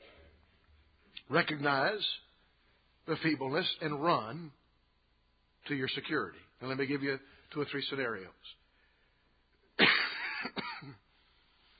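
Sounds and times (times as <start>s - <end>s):
speech: 1.3s - 2.3s, 3.1s - 4.6s, 5.6s - 8.6s
person coughing harshly: 9.8s - 11.0s.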